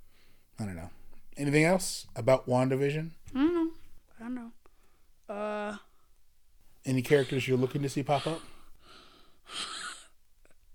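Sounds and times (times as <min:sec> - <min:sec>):
speech: 0:00.6 - 0:03.4, 0:06.9 - 0:08.6
exaggerated raspy creepy breath huffed into microphone: 0:08.1 - 0:10.1.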